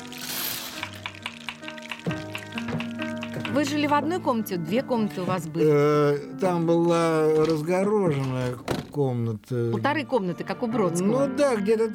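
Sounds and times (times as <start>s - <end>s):
rancid oil sizzling in a frying pan in a communal apartment: 0.0s - 4.0s
speech: 3.5s - 11.9s.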